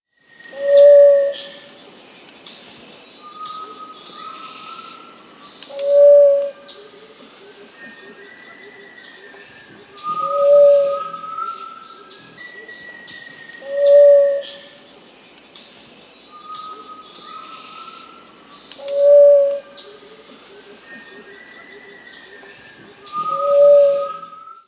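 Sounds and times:
Gray-fronted Dove Leptotila rufaxilla calling in Peru: 0.6 - 1.5, 5.7 - 6.6, 9.8 - 12.8, 13.6 - 14.6, 18.8 - 20.2, 23.0 - 24.4.

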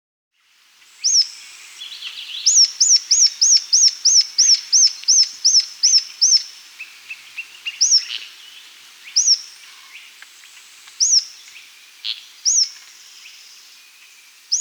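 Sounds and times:
Rough-Legged Tyrannulet Phyllomyias burmeisteri calling in the Andes: 1.0 - 13.6.

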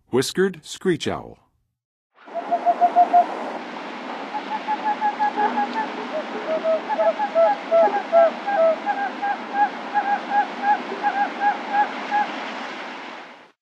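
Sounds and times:
Whiskered Screech-Owl calling in the Western USA: 2.3 - 3.4, 4.3 - 12.4.

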